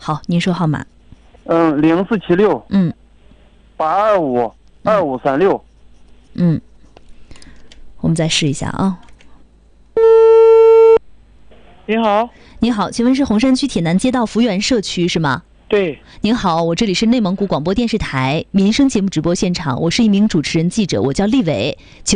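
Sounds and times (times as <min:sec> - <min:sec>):
speech: 0:00.0 - 0:03.0, 0:03.8 - 0:05.7, 0:06.4 - 0:06.7, 0:08.1 - 0:09.0, 0:11.9 - 0:22.1
telephone busy tone after call hung up: 0:10.0 - 0:11.0.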